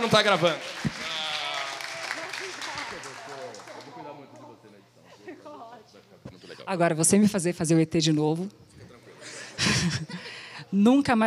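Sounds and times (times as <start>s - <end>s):
speech: 0.0s - 0.7s, 6.7s - 8.7s, 9.6s - 11.2s
audience clapping: 0.0s - 4.5s
laughter: 8.9s - 10.3s.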